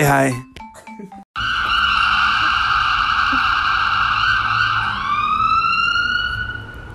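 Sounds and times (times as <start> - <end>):
speech: 0.0 - 1.2
ambulance siren passing by: 1.4 - 6.9
traffic rumbling: 1.4 - 6.9.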